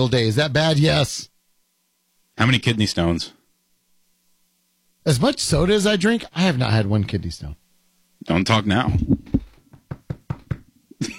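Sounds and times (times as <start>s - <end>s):
speech: 0.0s - 1.3s, 2.4s - 3.4s, 5.0s - 7.6s, 8.2s - 9.2s
sharp knocks on wood: 8.9s - 10.7s.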